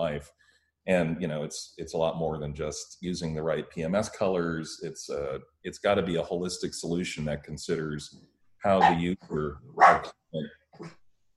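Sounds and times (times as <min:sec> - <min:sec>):
speech: 0:00.0 - 0:11.0
male dog barking in short sharp yaps: 0:08.8 - 0:09.0, 0:09.8 - 0:10.1.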